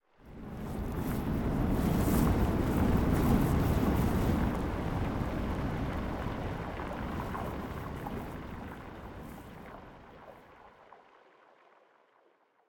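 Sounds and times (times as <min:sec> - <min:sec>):
surf: 0:00.4 - 0:09.7.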